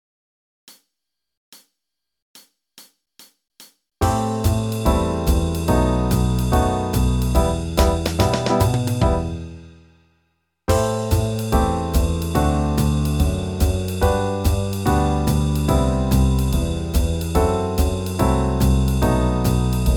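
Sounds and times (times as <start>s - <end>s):
jazz backing track in E minor: 4.0s - 9.6s, 10.7s - 19.9s.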